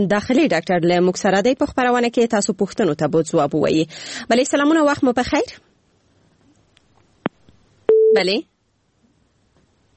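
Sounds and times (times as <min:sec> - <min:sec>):
speech: 0:00.0 - 0:05.7, 0:08.1 - 0:08.5
short steady mid-pitched telephone beep: 0:07.9 - 0:08.3.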